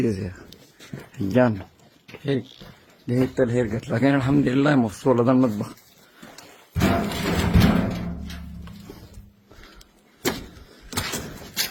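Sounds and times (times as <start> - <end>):
speech: 0.0 - 5.8
veranda door banging shut: 6.8 - 8.9.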